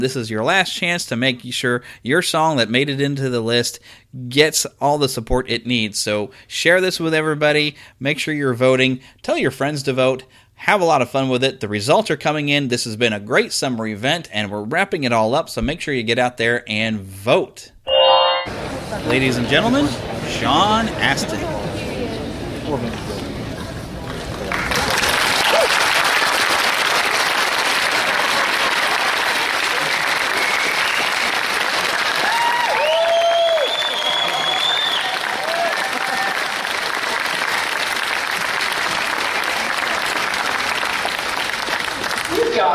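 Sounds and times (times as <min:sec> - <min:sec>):
speech: 0:00.0 - 0:21.7, 0:22.7 - 0:23.0
audience applauding: 0:24.0 - 0:42.7
audience cheers and whoops: 0:25.3 - 0:26.0, 0:29.8 - 0:31.3, 0:32.0 - 0:36.8.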